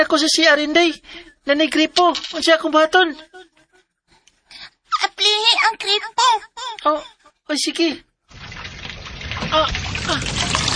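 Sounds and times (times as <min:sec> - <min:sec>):
speech: 0:00.0 - 0:03.5, 0:05.2 - 0:08.1, 0:09.5 - 0:10.7
water splashing and sloshing in a noisy rush: 0:08.3 - 0:10.7.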